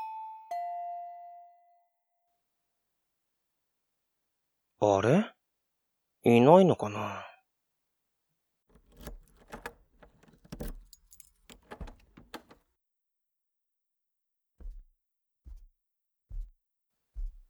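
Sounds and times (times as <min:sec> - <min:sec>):
speech: 0:04.8 - 0:05.4, 0:06.2 - 0:07.3
spare key jangling and scraping in a door lock: 0:08.7 - 0:12.6
soft thuds: 0:08.8 - 0:12.6, 0:14.6 - 0:15.7, 0:16.3 - 0:16.6, 0:17.2 - 0:17.4.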